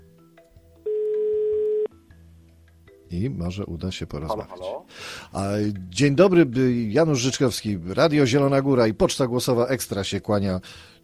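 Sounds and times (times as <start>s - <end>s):
faint low sound: 0.0s - 11.0s
telephone ringback tone while a call connects: 0.9s - 1.9s
speech: 3.1s - 11.0s.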